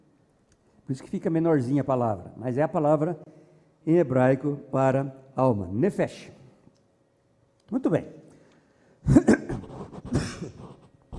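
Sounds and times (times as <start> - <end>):
speech: 0.9 - 6.4, 7.7 - 8.2
person clearing throat: 9.0 - 10.7
person coughing: 9.0 - 10.7.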